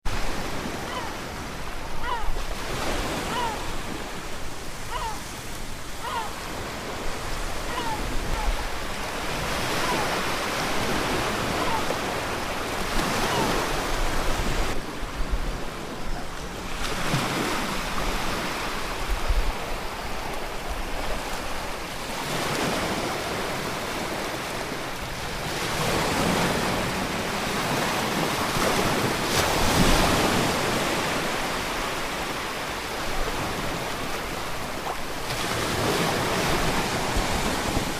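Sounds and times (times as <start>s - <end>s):
sea water: 0.0s - 37.9s
seagull calling: 0.7s - 4.0s, 4.8s - 12.4s, 13.0s - 13.7s.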